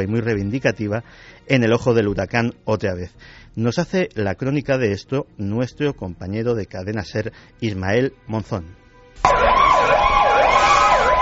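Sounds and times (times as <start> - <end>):
speech: 0.0 - 9.5
ambulance siren wailing: 9.2 - 11.2.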